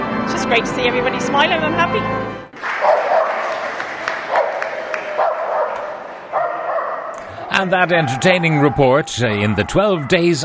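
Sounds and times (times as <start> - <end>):
speech: 0.3 - 3.0, 7.6 - 10.4
sharp clicks or claps: 2.6 - 6.0
crowd murmur at a Christmas carol service: 2.6 - 10.4
several dogs barking and yelping at a Christmas carol service: 2.8 - 3.6, 4.2 - 10.4.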